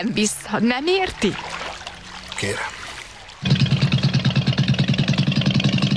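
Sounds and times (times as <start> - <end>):
speech: 0.0 - 1.5, 2.4 - 2.8
motorboat engine starting and running: 3.3 - 5.9.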